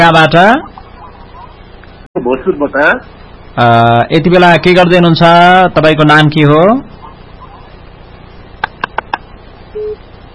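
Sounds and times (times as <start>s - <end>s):
faint hiss: 0.0s - 10.3s
speech: 0.1s - 0.7s, 2.2s - 7.0s
short steady telephone line tone: 9.7s - 10.0s
telephone line beeps after caller hangs up: 9.8s - 10.0s.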